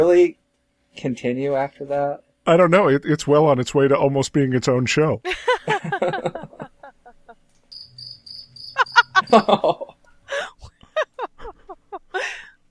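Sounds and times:
speech: 0.0 - 0.4, 1.0 - 6.6, 9.3 - 9.8
laughter: 5.3 - 7.4, 8.8 - 12.5
crickets chirping: 5.5 - 10.4
thin steady high chirping: 7.7 - 9.7.

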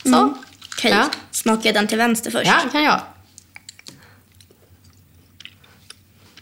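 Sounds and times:
chewing of sticky dried fruit: 0.0 - 1.4, 3.2 - 6.4
speech: 0.1 - 3.2.

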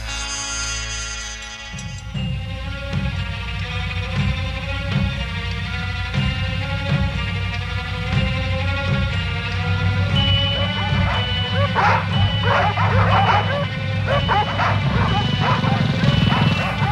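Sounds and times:
droning tones: 0.0 - 16.8
several dogs barking: 10.0 - 16.8.

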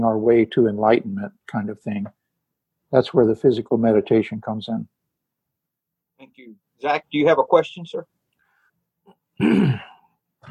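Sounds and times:
speech: 0.0 - 2.2, 2.9 - 5.0, 6.2 - 8.1, 9.4 - 10.4
loud rough guttural throat-clearing cough: 9.4 - 10.0.

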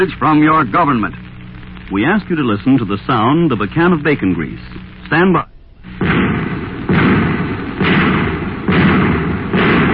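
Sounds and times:
speech: 0.0 - 1.2, 1.9 - 6.2
anti-tank shells firing sound effect: 5.9 - 9.9.

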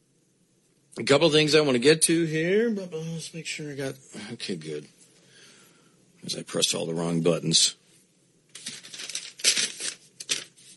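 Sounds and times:
speech: 1.0 - 5.0, 6.2 - 7.8
sheet of paper being handled, rustling and crinkling: 8.5 - 10.7.

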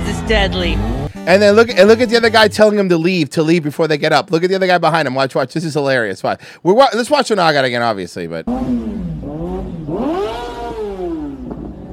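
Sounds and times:
speech: 0.3 - 9.1
motorcycle engine revving: 0.4 - 1.2, 8.5 - 11.9.

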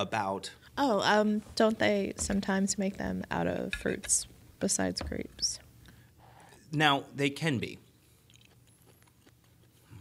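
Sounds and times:
speech: 0.0 - 5.6, 6.7 - 7.8
soft chewing of an apricot: 8.0 - 9.9.

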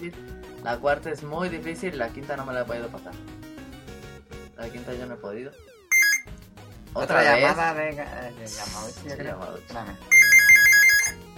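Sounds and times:
speech: 0.0 - 3.4, 4.6 - 5.7, 6.9 - 10.4
telephone ringtone signalling an incoming call: 5.9 - 6.3, 10.1 - 11.2.

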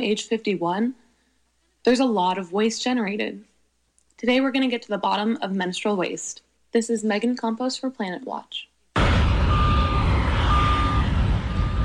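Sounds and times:
speech: 0.0 - 1.0, 1.8 - 3.5, 4.2 - 8.7
heavy machinery rumbling at a landfill: 9.0 - 11.8
truck reversing beeps at a landfill: 9.3 - 11.8.

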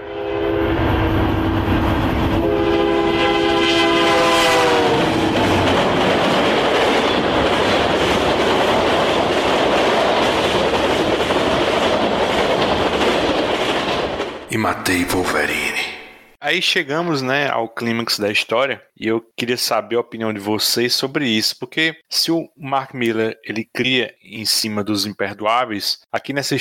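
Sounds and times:
freight train horn blast: 0.0 - 1.8, 2.4 - 5.3
freight train cars rolling past with rumble and clatter: 0.0 - 14.5
speech: 14.9 - 15.6, 16.4 - 26.6.

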